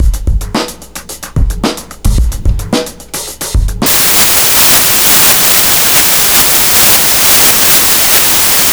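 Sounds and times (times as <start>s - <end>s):
bass beat: 0.0s - 8.7s.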